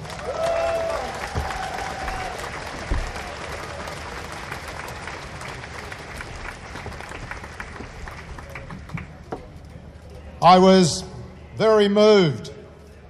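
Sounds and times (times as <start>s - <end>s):
large audience applauding to welcome a writer: 0.0s - 9.4s
faint cheers: 0.1s - 2.5s
speech: 10.4s - 12.5s.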